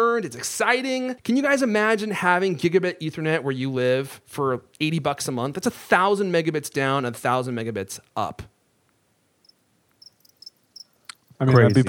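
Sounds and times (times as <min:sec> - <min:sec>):
speech: 0:00.0 - 0:08.5, 0:11.4 - 0:11.8
crickets chirping: 0:09.4 - 0:11.8.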